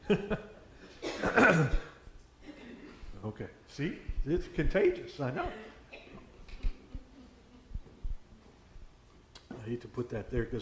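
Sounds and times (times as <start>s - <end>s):
speech: 0.1s - 0.5s, 1.2s - 1.9s, 3.2s - 5.7s, 9.7s - 10.6s
person clearing throat: 1.0s - 2.8s.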